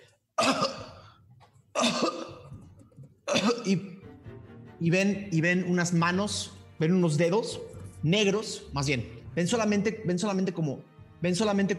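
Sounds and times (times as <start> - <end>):
harsh raspy coughs: 0.4 - 4.0
speech: 3.7 - 3.9, 4.8 - 11.7.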